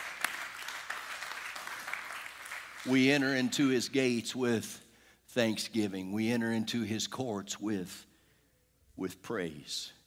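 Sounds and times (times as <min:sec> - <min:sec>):
congregation clapping hands: 0:00.0 - 0:03.7
speech: 0:02.8 - 0:08.1, 0:09.0 - 0:10.0.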